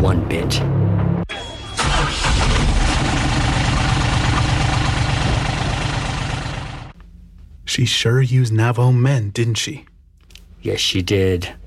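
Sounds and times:
speech: 0:00.1 - 0:01.0, 0:07.7 - 0:09.9, 0:10.6 - 0:11.6
truck engine cranking and idling: 0:01.4 - 0:07.0.

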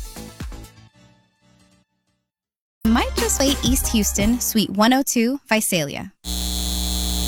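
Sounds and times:
speech: 0:02.9 - 0:06.2
data center humming with a steady electrical drone: 0:06.3 - 0:07.2.

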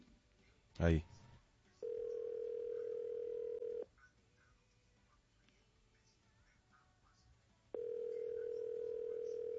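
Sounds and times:
speech: 0:00.8 - 0:01.2
telephone tone while calling a call center: 0:01.8 - 0:03.9, 0:07.8 - 0:09.5.

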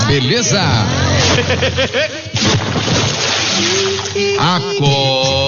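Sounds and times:
speech: 0:00.1 - 0:03.0, 0:03.6 - 0:05.3
laughter: 0:01.1 - 0:02.5
bucket of water splashing onto a boy: 0:02.3 - 0:04.4.

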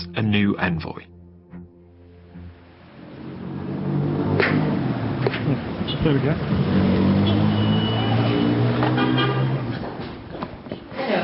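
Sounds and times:
city street traffic with engines rumbling and cars passing: 0:00.0 - 0:11.2
speech: 0:00.2 - 0:01.2, 0:06.0 - 0:06.8
long steady car horn blaring: 0:07.1 - 0:09.7.

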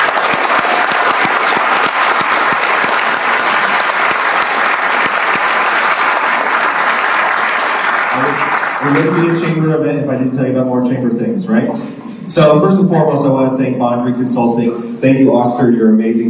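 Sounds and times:
large audience applause: 0:00.0 - 0:09.6
speech: 0:08.9 - 0:16.2.

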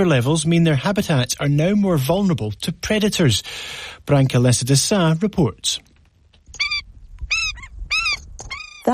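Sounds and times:
speech: 0:00.0 - 0:05.9
Indian skimmer giving nasal yelping calls: 0:06.5 - 0:08.9.

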